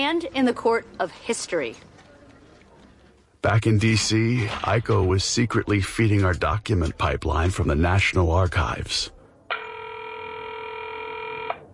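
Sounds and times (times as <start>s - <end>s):
speech: 0.0s - 1.9s, 3.4s - 9.2s
telephone ringing with electronic tone: 9.5s - 11.7s.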